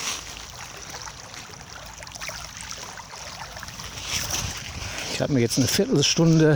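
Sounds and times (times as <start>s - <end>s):
small Baltic Sea waves lapping against the shore: 0.0s - 6.5s
speech: 5.2s - 6.5s.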